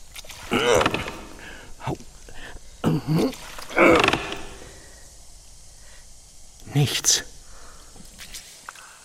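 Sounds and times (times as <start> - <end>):
heavy door being forced open, creaking and scraping: 0.5 - 1.8, 3.5 - 5.2
person grunting with effort: 0.5 - 2.0, 2.8 - 4.9
speech: 6.8 - 7.3.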